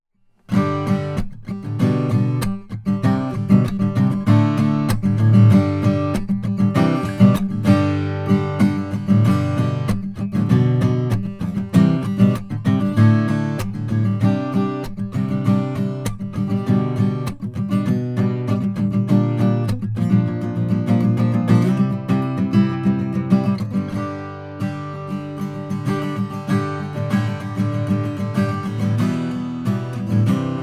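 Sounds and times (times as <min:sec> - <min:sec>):
koa OMC acoustic guitar with large sound hole: 0:00.2 - 0:30.6.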